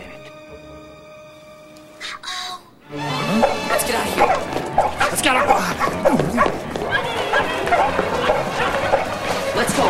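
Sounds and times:
dogs barking excitedly: 3.2 - 9.8
scrambling movement of kids and dogs rushing out of a warehouse: 3.2 - 9.8.

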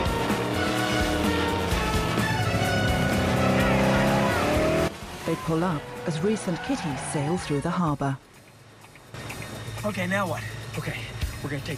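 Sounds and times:
car tires squealing: 0.0 - 8.1
car engine roaring as the car speeds off: 0.0 - 11.3
speech: 5.3 - 8.3, 9.8 - 11.7.

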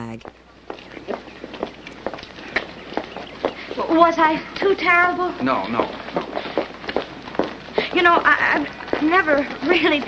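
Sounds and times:
speech: 0.1 - 0.4, 3.9 - 6.4, 8.0 - 10.0
quick footsteps of people hurrying out of a building: 0.2 - 10.0.

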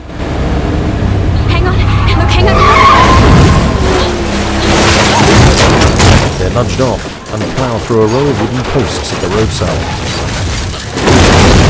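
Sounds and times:
car engine roaring while accelerating hard during a road chase: 0.0 - 7.6
car tires skidding during a road chase: 1.6 - 5.9
speech: 6.6 - 10.3.

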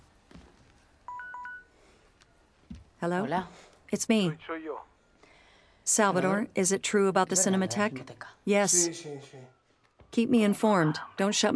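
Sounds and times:
mobile phone keypad dialing beeps: 1.1 - 1.7
speech: 3.0 - 4.9, 5.9 - 11.5.

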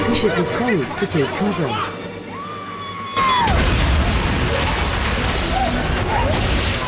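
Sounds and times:
speech: 0.2 - 2.0
bomb explosion: 3.4 - 6.8
glass shattering: 3.4 - 6.8.

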